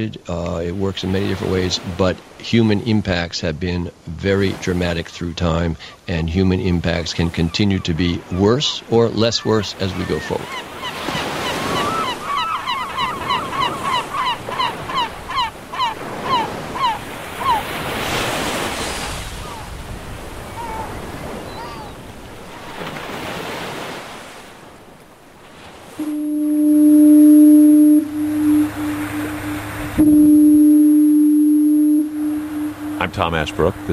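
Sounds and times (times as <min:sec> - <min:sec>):
speech: 0:00.0 - 0:10.7, 0:33.3 - 0:33.9
ocean surf: 0:00.0 - 0:33.9
seabirds calling: 0:04.4 - 0:33.9
lighthouse foghorn blasting on the coast of Maine: 0:25.9 - 0:33.9.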